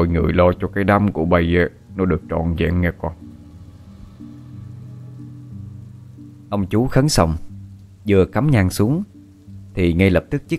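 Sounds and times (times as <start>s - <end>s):
speech: 0.0s - 3.2s, 6.5s - 9.1s, 9.8s - 10.5s
rain falling outside: 0.0s - 10.5s.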